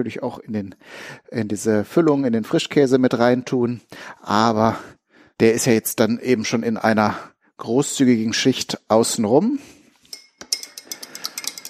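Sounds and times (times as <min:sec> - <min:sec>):
speech: 0:00.0 - 0:09.8
spoon stirring gelatine in a bowl for a salmon terrine: 0:10.1 - 0:11.6.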